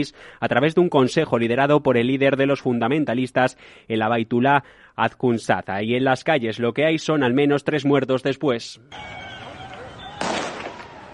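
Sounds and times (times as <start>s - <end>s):
speech: 0.0s - 9.2s
gunshots fired into the air: 10.1s - 11.1s.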